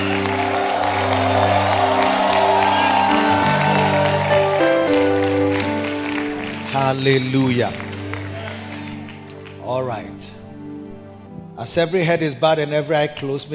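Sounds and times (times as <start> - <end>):
whoops from church audience: 0.0 - 5.6
large church audience clapping, shouting and cheering: 0.0 - 10.8
sustained organ chords: 0.0 - 13.5
speech: 6.9 - 7.9, 9.8 - 10.4, 11.6 - 13.5.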